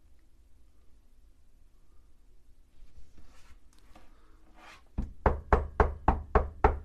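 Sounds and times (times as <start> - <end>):
quiet rustling: 2.6 - 5.0
firm knocking on a wooden door: 5.0 - 6.8.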